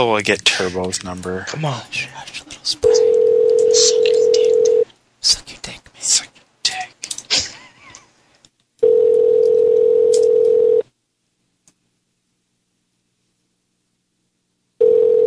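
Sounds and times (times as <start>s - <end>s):
speech: 0.0s - 3.2s
telephone ringback tone while waiting for pickup: 2.8s - 4.8s, 8.8s - 10.8s, 14.8s - 15.2s.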